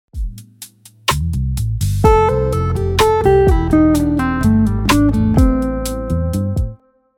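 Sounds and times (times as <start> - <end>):
guitar hammer-ons and pull-offs: 2.0 - 6.8.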